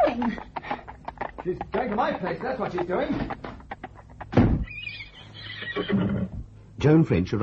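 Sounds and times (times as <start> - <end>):
speech: 0.1 - 0.6, 1.4 - 3.5, 5.8 - 7.4
soft thumps: 2.4 - 4.7
horse whinnying with excitement at the stables: 4.6 - 6.5.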